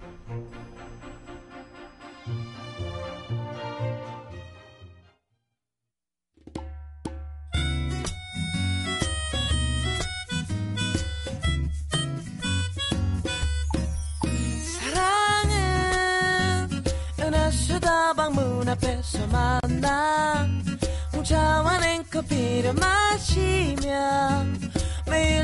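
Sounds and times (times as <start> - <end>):
instrumental pop song intro with beat and bass: 7.5 - 25.4
speech: 18.1 - 20.5, 21.2 - 25.4.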